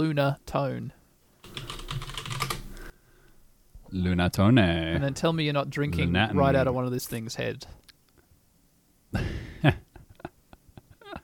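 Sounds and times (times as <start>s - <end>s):
speech: 0.0s - 1.6s, 3.9s - 7.8s, 9.1s - 9.8s
typing on a computer keyboard: 1.4s - 2.9s.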